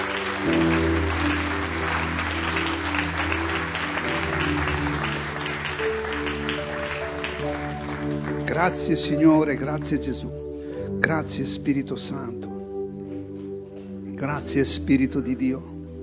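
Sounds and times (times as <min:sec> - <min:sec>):
audience applauding in praise of Jesus: 0:00.0 - 0:10.0
speech: 0:08.6 - 0:10.4, 0:11.0 - 0:12.5, 0:14.2 - 0:15.7.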